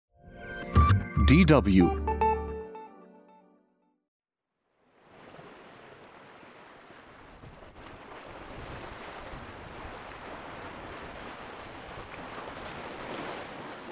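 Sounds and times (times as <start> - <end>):
speech: 1.3 - 2.1
ocean waves crashing against black volcanic rocks on the north coast of Jeju Island: 5.1 - 13.8.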